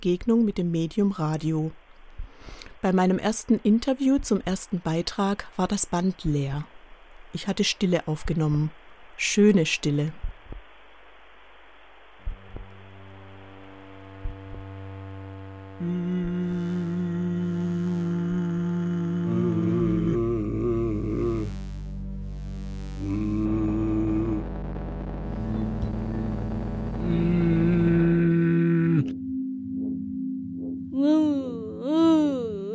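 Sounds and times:
speech: 0.0 - 1.8, 2.4 - 6.7, 7.3 - 10.2, 15.8 - 16.8
deep humming drone of layered low tones: 12.2 - 32.4.

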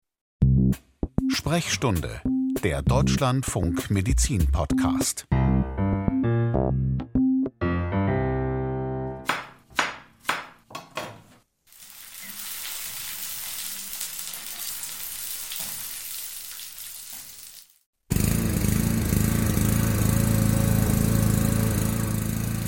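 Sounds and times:
tonal music: 0.6 - 9.4
speech: 0.7 - 5.4
food sizzling in a frying pan: 11.7 - 17.9
lawn mower engine droning: 18.1 - 22.6.

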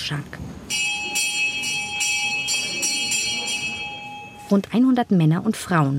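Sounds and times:
speech: 0.1 - 0.8, 4.5 - 5.9
bell ringing in a reverberant Ayahuasca church hall near Rio de Janeiro: 0.7 - 4.9.

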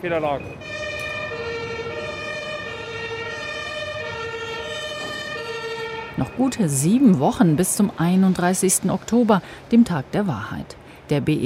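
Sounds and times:
speech: 0.0 - 1.6, 6.2 - 11.4
emergency vehicle siren after a traffic accident on an airport apron: 0.0 - 7.9
low traffic rumble: 0.0 - 11.4.

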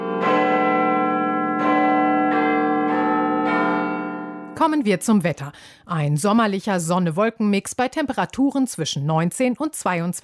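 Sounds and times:
large clock tower bell striking the hour: 0.0 - 4.8
speech: 4.6 - 10.2.

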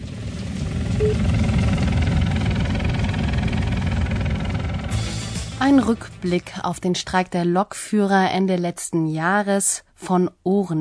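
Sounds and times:
helicopter arriving: 0.0 - 7.1
speech: 1.0 - 1.4, 5.6 - 10.7.

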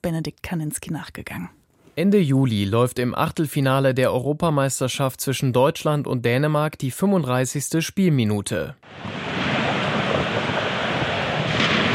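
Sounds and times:
speech: 0.0 - 9.4
strong wind roaring during a thunderstorm: 8.8 - 11.9.

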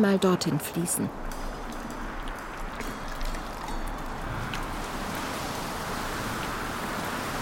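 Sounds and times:
speech: 0.0 - 1.5
heavy rain with approaching storm: 1.1 - 7.3.

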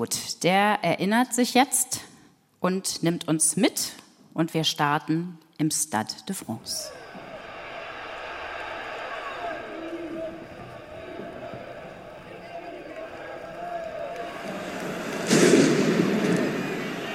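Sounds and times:
speech: 0.0 - 7.0
steady roar of a large stadium crowd: 6.8 - 17.1
loud explosion in a stadium: 14.5 - 17.1.

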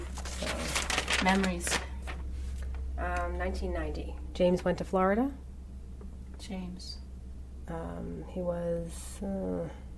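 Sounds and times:
crinkling and rustling of a folded sheet of paper being opened: 0.0 - 2.8
speech: 1.2 - 1.9, 3.0 - 5.4, 6.4 - 7.0, 7.7 - 9.8.

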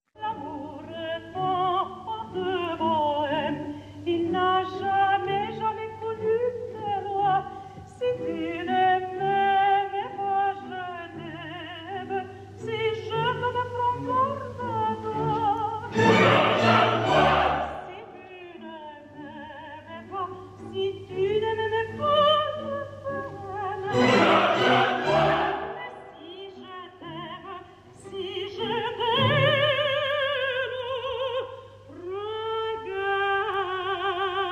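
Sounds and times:
mezzo-soprano singing an opera aria with vibrato: 0.1 - 34.4
orchestral accompaniment: 15.9 - 18.3, 23.9 - 26.4.

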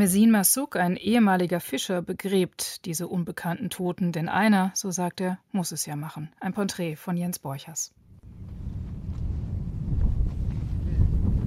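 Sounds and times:
speech: 0.0 - 8.0
strong wind blowing from the sea over a sandy landscape: 8.2 - 11.4.

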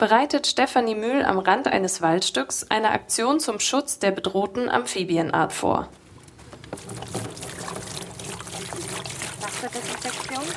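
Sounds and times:
speech: 0.0 - 6.0, 6.7 - 7.3, 9.6 - 10.5
rubber boots splashing in a large black tub of disinfectant water: 6.7 - 10.5.

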